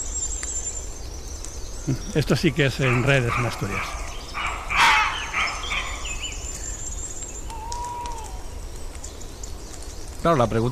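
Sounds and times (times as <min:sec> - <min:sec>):
thin birdsong: 0:00.0 - 0:10.6
speech: 0:01.8 - 0:04.0, 0:10.2 - 0:10.6
fox barking outdoors: 0:02.8 - 0:06.2.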